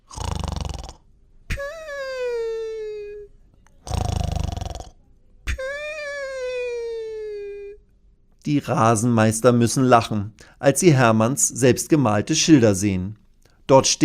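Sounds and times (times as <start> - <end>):
dinosaur snoring softly while asleep: 0.0 - 1.1, 3.8 - 5.0
speech: 8.5 - 14.0.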